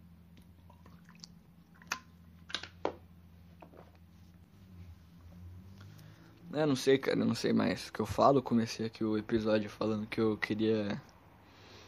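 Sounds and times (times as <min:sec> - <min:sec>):
faint low hum: 0:00.0 - 0:11.8
person gulping water: 0:00.4 - 0:02.2
speech: 0:06.6 - 0:11.1.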